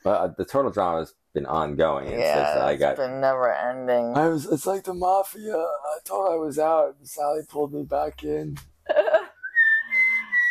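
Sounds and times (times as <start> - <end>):
speech: 0.0 - 9.1
person whistling a tune: 9.4 - 10.4.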